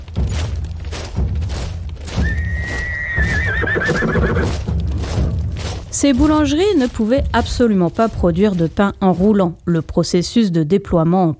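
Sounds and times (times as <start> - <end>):
hooves clip-clopping: 0.0 - 11.3
horse long wavering whinny: 2.2 - 4.6
speech: 6.0 - 11.3.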